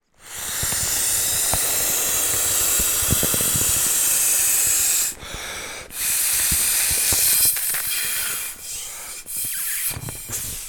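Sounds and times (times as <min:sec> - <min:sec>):
toy bop bag inflating by mouth: 0:00.0 - 0:10.6.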